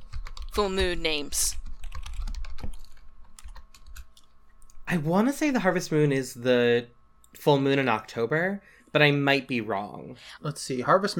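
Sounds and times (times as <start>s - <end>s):
typing on a computer keyboard to search online: 0.0s - 0.8s, 1.5s - 4.3s
speech: 0.6s - 1.6s, 4.9s - 11.1s.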